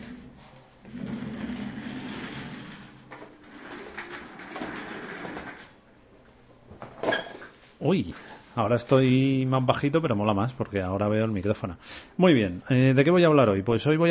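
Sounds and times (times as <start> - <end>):
shuffling and scraping of chairs as someone moves to another chair at a desk: 0.0 - 5.9
speech: 7.8 - 14.1.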